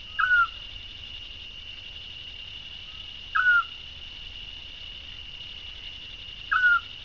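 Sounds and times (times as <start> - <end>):
Eurasian scops owl (Otus scops) whistled call: 0.1 - 0.6, 3.3 - 3.7, 6.5 - 6.9.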